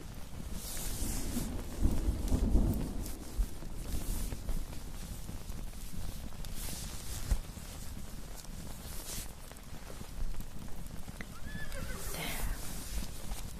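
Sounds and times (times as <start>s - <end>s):
rain falling: 0.0s - 13.5s.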